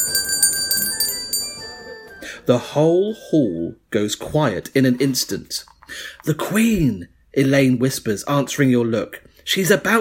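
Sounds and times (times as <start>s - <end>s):
bright crystal bell ringing: 0.0s - 2.4s
speech: 2.4s - 9.9s.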